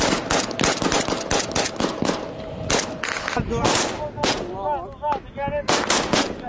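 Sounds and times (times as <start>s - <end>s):
Iraqi military and popular mobilization forces firing guns near Mosul: 0.0s - 4.5s, 5.7s - 6.4s
heavier booming artillery shots: 0.0s - 4.6s, 5.7s - 6.4s.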